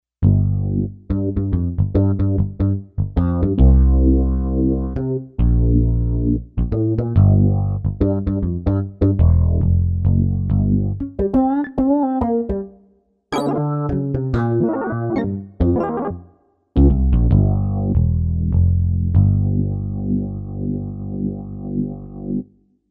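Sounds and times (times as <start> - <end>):
funky picked bass on a digital synthesizer: 0.2 - 12.7, 13.3 - 22.5.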